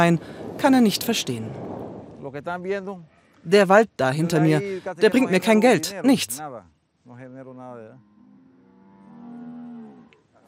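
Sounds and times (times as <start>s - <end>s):
speech: 0.0s - 8.1s
cattle lowing on a ranch in Panama on cleared rainforest land: 7.8s - 10.4s.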